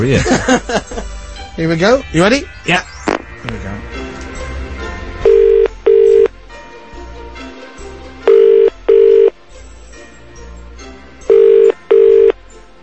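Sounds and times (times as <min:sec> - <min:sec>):
speech: 0:00.0 - 0:01.0, 0:01.6 - 0:02.8
laughter: 0:00.0 - 0:01.2
telephone ringback tone with double bursts of buzzing rings: 0:05.2 - 0:06.3, 0:08.3 - 0:09.4, 0:11.3 - 0:12.4.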